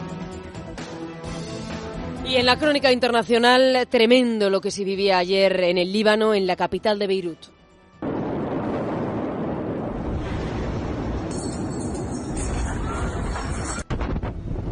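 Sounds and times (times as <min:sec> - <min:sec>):
speech: 0:02.3 - 0:07.6
massive explosion in Beirut Lebanon: 0:08.0 - 0:14.7.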